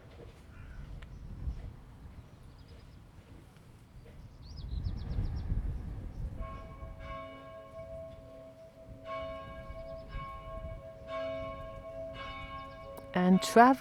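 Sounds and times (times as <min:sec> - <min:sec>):
faint outdoor background: 0:00.0 - 0:13.8
bell ringing with resonant vibrations: 0:06.4 - 0:13.8
speech: 0:13.3 - 0:13.8.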